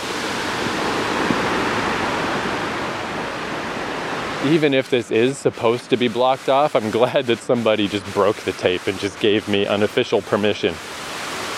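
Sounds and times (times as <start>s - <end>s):
waterfall rushing water in South Korea: 0.0s - 6.5s, 10.7s - 11.5s
speech: 4.4s - 11.0s.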